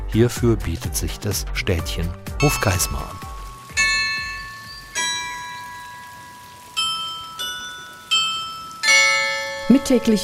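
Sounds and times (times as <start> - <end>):
speech: 0.1 - 3.3, 9.7 - 10.2
splashing fountain: 2.4 - 10.2
town hall tower carillon in Hofgeismar northern Hesse playing bell notes: 2.4 - 10.2.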